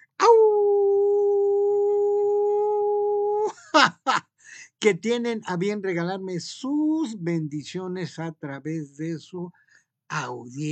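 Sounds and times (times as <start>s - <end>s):
person howling as a greeting: 0.1s - 3.6s
speech: 4.8s - 10.7s.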